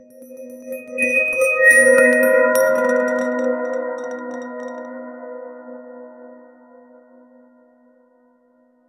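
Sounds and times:
slow mysterious chime: 0.0s - 6.4s.

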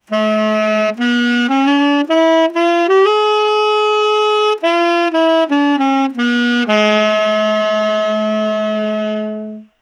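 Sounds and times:
tenor saxophone: 0.0s - 9.7s.

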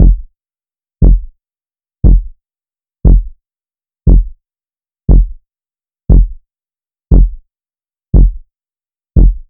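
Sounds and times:
short quiet heartbeat: 0.0s - 0.3s, 1.0s - 1.3s, 2.0s - 2.3s, 3.0s - 3.4s, 4.1s - 4.4s, 5.1s - 5.4s, 6.1s - 6.4s, 7.1s - 7.4s, 8.2s - 8.4s, 9.2s - 9.4s.

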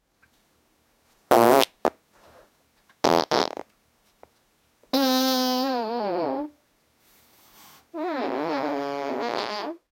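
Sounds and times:
woman farting in a bathroom: 1.3s - 2.0s, 3.0s - 3.7s, 4.9s - 6.5s, 8.0s - 9.8s.

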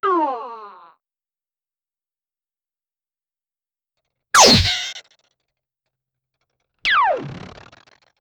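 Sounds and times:
classic cartoon slip and fall with exaggerated sound effects: 4.4s - 4.9s.

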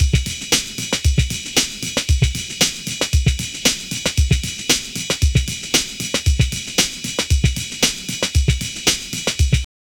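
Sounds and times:
classic styled breakbeat drum loop: 0.0s - 9.7s.

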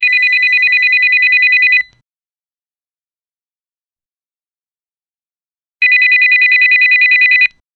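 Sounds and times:
old corded phone ringing: 0.0s - 1.9s, 5.8s - 7.6s.

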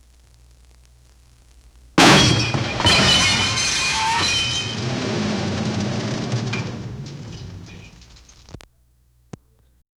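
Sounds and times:
vintage metal car crash: 2.0s - 8.6s.

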